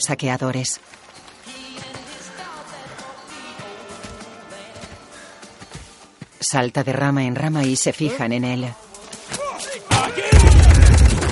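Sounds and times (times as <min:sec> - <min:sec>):
speech: 0:00.0 - 0:01.1, 0:06.5 - 0:08.9
dense loud roar of continuing action noise: 0:09.9 - 0:11.3
gunshots fired at a fleeing raccoon: 0:09.9 - 0:11.3.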